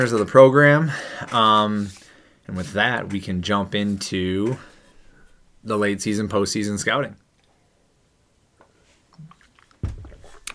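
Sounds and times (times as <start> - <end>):
speech: 0.0 - 4.7, 5.6 - 7.2
person gulping water: 9.1 - 10.5.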